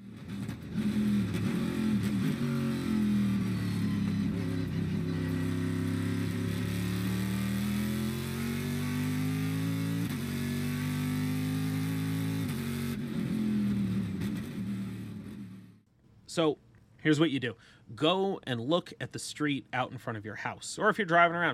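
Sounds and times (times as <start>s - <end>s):
GM Gen 3 small block LS V8 engine revving: 0.0s - 15.8s
speech: 16.4s - 21.5s.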